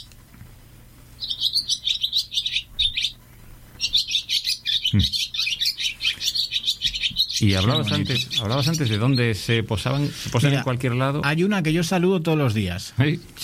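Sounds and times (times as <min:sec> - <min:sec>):
swallows twittering: 0:01.2 - 0:03.2, 0:03.8 - 0:10.6
speech: 0:05.0 - 0:05.2, 0:07.4 - 0:13.4.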